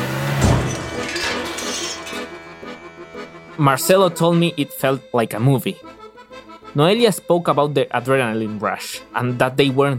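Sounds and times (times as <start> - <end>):
car crashing into metal gates: 0.0 - 2.4
debris clattering and shattering: 0.3 - 2.4
speech: 3.6 - 6.0, 6.8 - 9.9.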